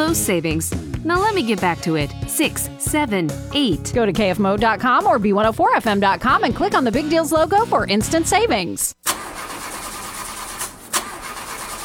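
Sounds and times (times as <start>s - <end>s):
speech: 0.1s - 9.1s
car engine cranking but failing to start: 9.0s - 11.8s.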